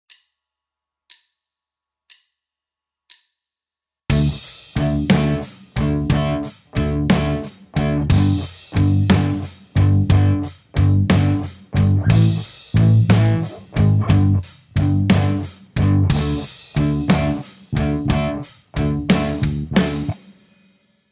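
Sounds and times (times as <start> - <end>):
backing track: 4.1 - 20.3.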